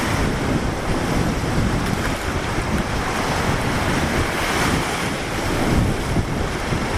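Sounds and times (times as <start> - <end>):
heavy wind buffeting the microphone: 0.0 - 6.9
rough sea surf breaking on shore: 0.0 - 6.9.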